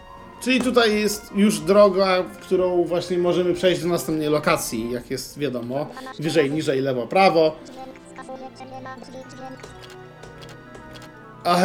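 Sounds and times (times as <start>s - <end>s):
steady layered tonal backdrop of a video game door sound cue: 0.0s - 11.6s
speech: 0.4s - 10.0s, 11.4s - 11.6s.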